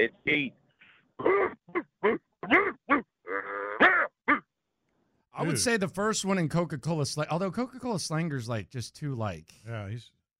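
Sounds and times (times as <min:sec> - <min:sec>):
speech: 0:00.0 - 0:00.6, 0:01.2 - 0:02.6, 0:05.4 - 0:10.3
person imitating a dog barking with short throaty yaps: 0:01.2 - 0:04.5.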